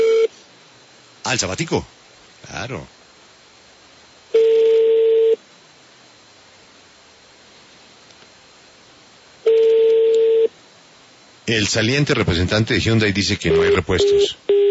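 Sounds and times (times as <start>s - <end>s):
telephone call tones while phoning to find spare parts: 0.0s - 0.3s, 4.3s - 5.4s, 9.4s - 10.5s, 13.5s - 14.6s
faint hiss: 0.2s - 14.6s
speech: 1.3s - 3.0s, 11.5s - 14.5s.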